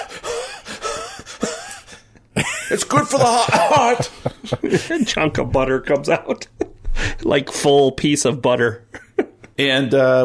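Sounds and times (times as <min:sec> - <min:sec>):
heavy rapid gasping breathing: 0:00.0 - 0:02.2, 0:03.8 - 0:05.1, 0:06.8 - 0:07.3
laughter: 0:00.0 - 0:05.4, 0:08.9 - 0:09.6
speech: 0:02.7 - 0:06.6, 0:07.3 - 0:08.9, 0:09.6 - 0:10.2.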